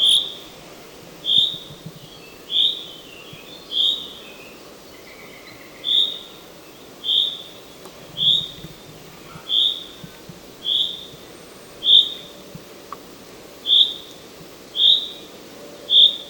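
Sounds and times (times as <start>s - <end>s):
common chaffinch Fringilla coelebs giving whistled call notes: 0.0s - 0.5s, 1.2s - 6.3s, 7.0s - 7.5s, 8.2s - 8.6s, 9.4s - 10.0s, 10.6s - 12.4s, 13.7s - 14.1s, 14.8s - 15.3s, 15.9s - 16.2s
low background noise: 0.0s - 16.2s.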